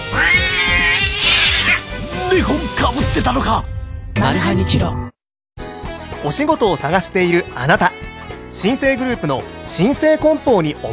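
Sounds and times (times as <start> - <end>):
kitten meowing: 0.0 - 1.8
speech: 2.4 - 5.1, 6.2 - 10.9.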